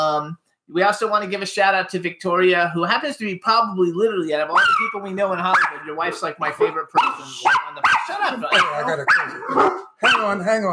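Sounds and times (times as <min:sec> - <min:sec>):
speech: 0:00.2 - 0:10.7
dogs barking at a delivery: 0:04.6 - 0:04.9, 0:05.5 - 0:10.4.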